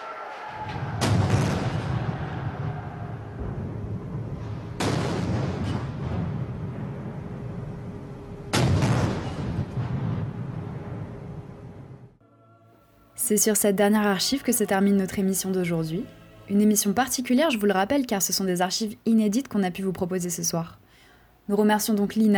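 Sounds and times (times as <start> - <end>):
long rumbling echo of cannon booms: 0.0 - 12.2
cannons firing a salute for an imperial procession: 0.6 - 11.3
speech: 13.3 - 20.8, 21.5 - 22.3.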